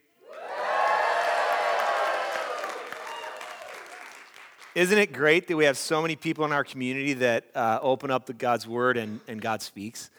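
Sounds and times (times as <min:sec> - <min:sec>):
large crowd cheering and whooping: 0:00.2 - 0:04.4
scattered claps: 0:00.9 - 0:05.1
speech: 0:04.8 - 0:10.1.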